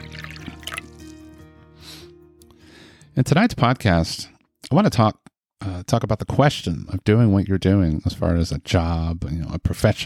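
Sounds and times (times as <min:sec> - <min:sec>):
drink being poured into a glass in a gentle stream: 0:00.0 - 0:01.2
speech: 0:03.2 - 0:05.2, 0:05.8 - 0:10.0.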